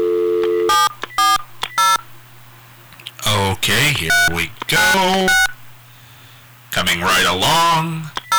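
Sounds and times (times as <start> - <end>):
touch-tone keypad beeps on a phone system: 0.0 - 2.0, 4.1 - 5.5, 8.2 - 8.3
speech: 3.7 - 5.5, 6.7 - 8.2.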